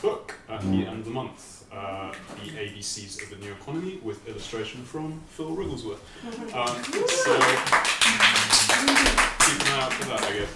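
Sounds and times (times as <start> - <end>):
speech: 0.6 - 10.5
crowd applauding: 6.5 - 10.5.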